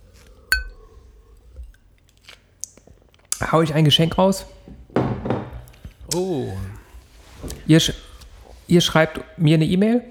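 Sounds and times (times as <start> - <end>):
glasses clinking during a toast: 0.5 - 1.0
speech: 3.4 - 4.6, 6.2 - 6.8, 7.7 - 8.0, 8.7 - 10.1.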